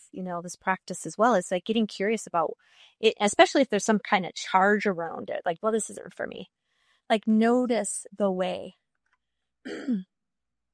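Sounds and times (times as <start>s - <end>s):
speech: 0.1s - 8.8s, 9.6s - 10.1s
throat clearing ending with a brief voiced grunt: 9.7s - 10.1s.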